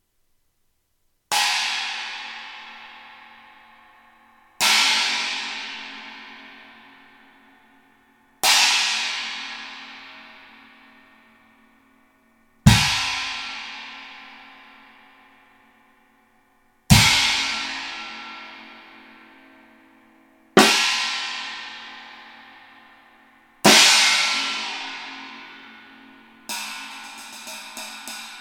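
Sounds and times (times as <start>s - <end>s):
20-inch china cymbal: 1.3s - 28.4s.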